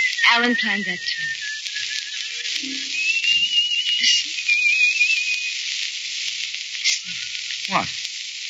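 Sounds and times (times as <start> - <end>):
person whistling a thin wavering melody: 0.0 - 5.7, 6.8 - 7.6
steady broad hiss: 0.0 - 8.4
speech: 0.3 - 1.4, 2.6 - 3.0, 7.7 - 8.0.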